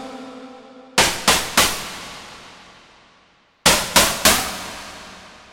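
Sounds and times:
Kawai K1 synthesizer slap shot: 1.0 - 2.9, 3.7 - 5.3.

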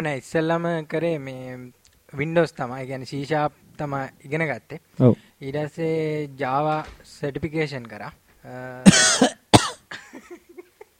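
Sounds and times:
speech: 0.0 - 9.4
person coughing in the middle of a conversation: 8.8 - 10.2.

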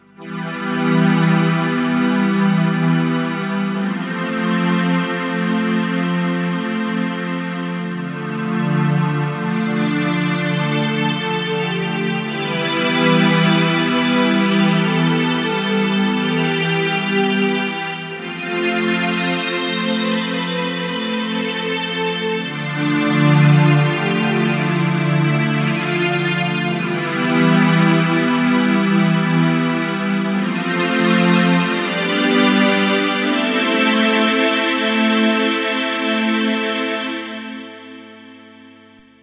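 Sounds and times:
Kawai K1 synthesizer string wash: 0.1 - 39.0.

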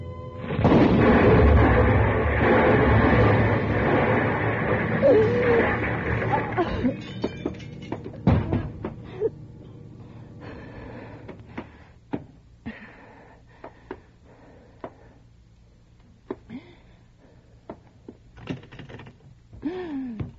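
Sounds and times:
loud accidental explosion: 0.4 - 7.3
window shattering: 0.4 - 9.0
scattered crashes and falling debris: 0.4 - 9.1.

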